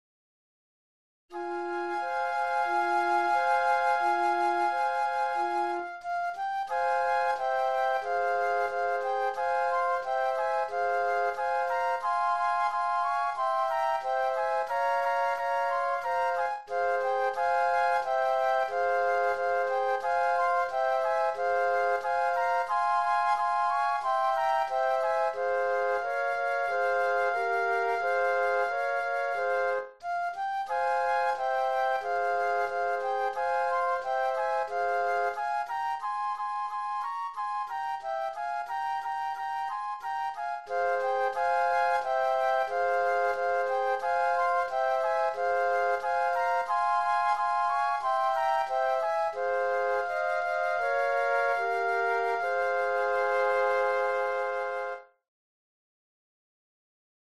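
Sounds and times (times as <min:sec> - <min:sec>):
flute trio playing: 0:01.3 - 0:55.2.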